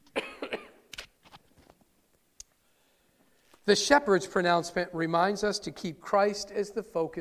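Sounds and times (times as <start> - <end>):
harsh coughs: 0.1 - 0.9
speech: 3.7 - 7.1.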